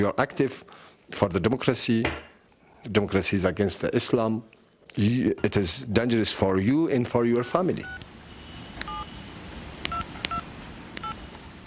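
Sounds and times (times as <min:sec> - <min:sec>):
speech: 0:00.0 - 0:08.1
steady low hiss: 0:00.0 - 0:11.6
touch-tone keypad beeps dialing a phone number: 0:08.9 - 0:09.1, 0:09.9 - 0:10.4.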